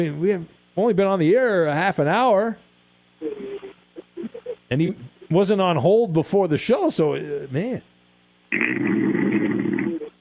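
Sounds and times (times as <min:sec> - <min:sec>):
speech: 0:00.0 - 0:02.6, 0:04.7 - 0:07.9
caller snoring loudly through a phone line: 0:08.6 - 0:10.1.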